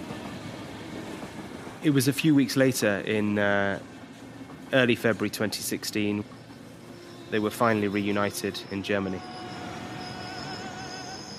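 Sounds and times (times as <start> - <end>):
train pulling into the station at Saarbrücken Germany: 0.0 - 11.3
speech: 1.8 - 3.9, 4.7 - 6.4, 7.3 - 9.4
high metallic train wheel and brake squeals: 5.2 - 11.3.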